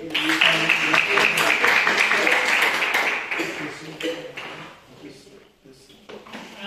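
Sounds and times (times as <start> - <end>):
audience applauding: 0.0 - 4.5.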